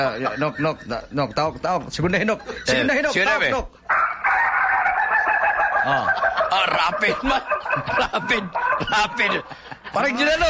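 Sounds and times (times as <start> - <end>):
chickens clucking and crowing: 0.0 - 2.9, 3.9 - 10.2
speech: 0.0 - 3.9, 5.8 - 10.4
laughter: 2.1 - 3.5, 5.7 - 10.4
rooster crowing: 3.9 - 9.1.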